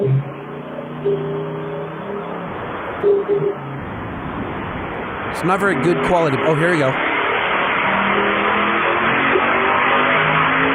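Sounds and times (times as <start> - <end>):
car engine revving on a dyno: 0.0 - 10.7
speech: 1.0 - 1.4, 5.4 - 7.1.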